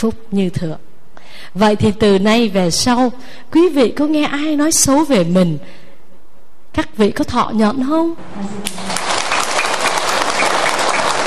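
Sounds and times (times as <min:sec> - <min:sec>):
speech: 0:00.0 - 0:05.8, 0:06.8 - 0:09.0
audience applauding at a Buddhist dharma talk: 0:08.6 - 0:11.2.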